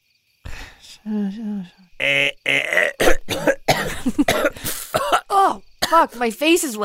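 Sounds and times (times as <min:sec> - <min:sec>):
strained voiced groan: 0:00.5 - 0:03.6
speech: 0:01.0 - 0:02.6, 0:05.9 - 0:06.8
dry coughs: 0:02.0 - 0:06.1.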